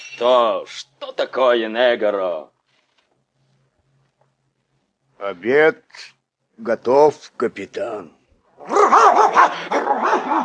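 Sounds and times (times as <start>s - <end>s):
speech: 0.2s - 2.5s, 5.2s - 10.4s
dog barking and growling aggressively: 8.6s - 10.4s.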